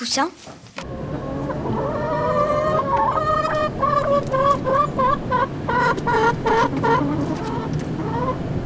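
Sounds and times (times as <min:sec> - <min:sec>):
speech: 0:00.0 - 0:01.0
constant low hum: 0:00.8 - 0:08.6
several hens clucking and cackling: 0:00.8 - 0:08.6.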